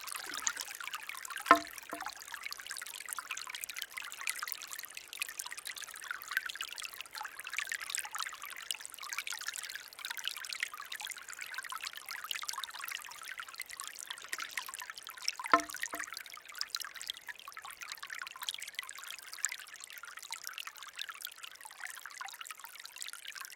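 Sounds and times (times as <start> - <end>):
water trickling in a Japanese bamboo fountain: 0.0 - 23.3
bamboo fountain tipping and striking with a hollow knock: 1.4 - 2.2, 15.5 - 16.1.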